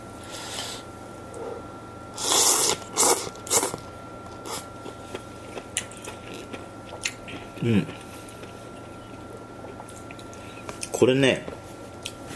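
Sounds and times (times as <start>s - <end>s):
wet chewing and slurping of canned tantanmen with thin konjac noodles: 2.2s - 10.9s
speech: 7.6s - 8.0s, 11.0s - 11.6s.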